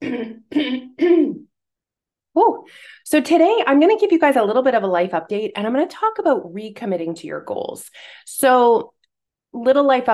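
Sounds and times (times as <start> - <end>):
throaty coughs close to the microphone: 0.0 - 1.5
speech: 3.1 - 10.1.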